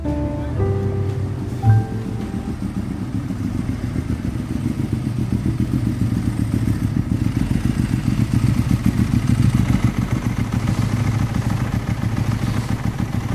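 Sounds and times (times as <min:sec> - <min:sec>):
three-wheeled motorcycle engine chugging: 0:00.2 - 0:13.3.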